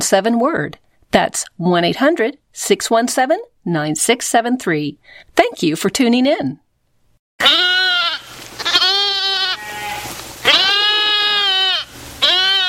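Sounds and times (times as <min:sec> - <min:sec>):
speech: 0:00.0 - 0:06.6, 0:07.4 - 0:07.7
goats bleating while grazing: 0:07.4 - 0:12.6.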